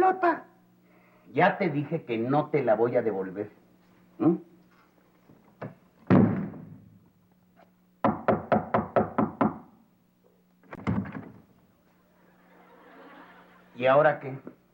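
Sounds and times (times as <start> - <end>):
low hum: 0.0 - 14.7
speech: 1.3 - 3.6, 4.2 - 4.5, 13.8 - 14.6
loud thud: 6.1 - 7.0
sharp knocks on a door: 8.0 - 9.7
laughter: 12.1 - 14.0.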